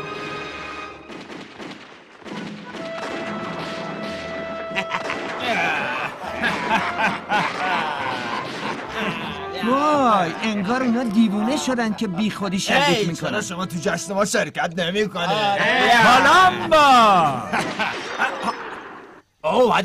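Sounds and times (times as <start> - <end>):
commotion: 0.0 - 19.3
gunfire from a camp: 1.0 - 5.4, 7.5 - 9.0, 17.6 - 18.5
laughter: 4.6 - 13.0, 15.3 - 19.2
speech: 10.2 - 17.8, 19.6 - 19.8.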